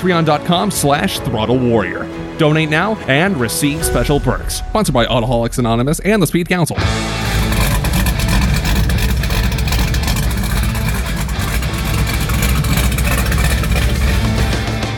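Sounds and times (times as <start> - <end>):
speech: 0.0 - 7.3
supercharged Volvo 240 with LS V8 swap exhaust rumbling: 4.2 - 14.9.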